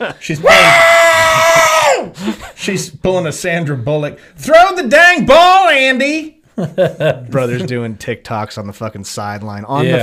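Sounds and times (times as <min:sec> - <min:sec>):
speech: 0:00.0 - 0:01.1, 0:02.1 - 0:10.0
voice imitating a woman screaming with a high-pitched shriek: 0:00.4 - 0:02.1
laughter: 0:06.6 - 0:07.9.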